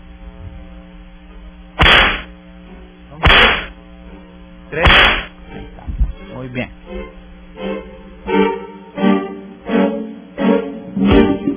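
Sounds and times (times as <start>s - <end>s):
low hum: 0.0s - 11.5s
whip cracks: 1.8s - 2.3s, 3.2s - 3.7s, 4.8s - 5.3s
speech: 4.7s - 5.0s, 6.5s - 6.8s.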